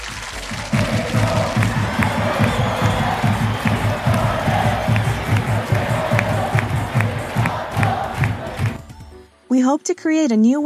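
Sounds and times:
rhythmic clapping: 0.0 - 9.2
large stadium crowd chanting in unison: 0.4 - 8.8
speech: 9.6 - 10.6.

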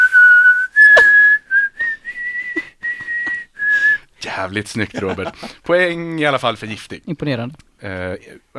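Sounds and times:
person whistling a short song melody: 0.0 - 4.0
speech: 4.3 - 8.5
laughter: 4.8 - 5.6.

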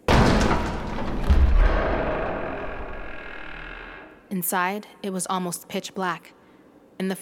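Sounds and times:
large heavy metal double doors clanking open: 0.0 - 4.1
low thuds: 0.0 - 4.1
speech: 4.4 - 6.4, 7.0 - 7.2.

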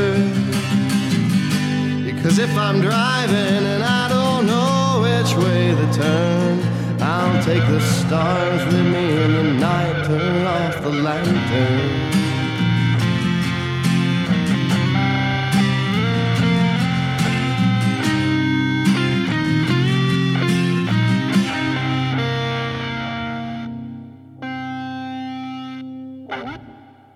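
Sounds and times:
effects-laden distorted guitar: 0.0 - 27.1
speech: 2.3 - 3.8, 7.3 - 12.1
full band playing: 4.8 - 25.4, 26.3 - 27.1.

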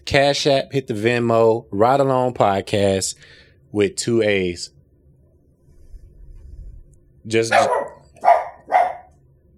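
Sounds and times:
speech: 0.1 - 4.8, 7.2 - 7.8
low rumbling background: 3.1 - 8.8
dog barking: 7.5 - 9.2.

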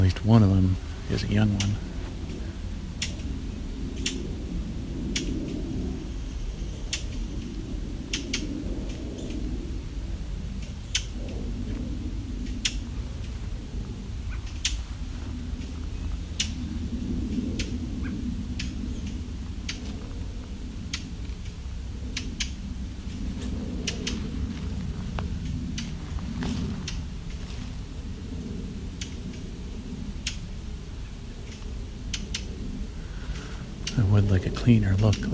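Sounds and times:
steady low outdoor rumble: 0.0 - 35.3
speech: 0.1 - 1.9, 34.6 - 35.3
brown thrasher tick calls: 1.3 - 3.3, 3.9 - 4.3, 5.1 - 5.6, 6.6 - 9.4, 10.6 - 11.4, 14.3 - 14.8, 15.5 - 16.7, 17.3 - 20.1, 20.8 - 22.6, 23.7 - 24.2, 30.2 - 30.5, 31.4 - 32.6, 33.2 - 35.3.

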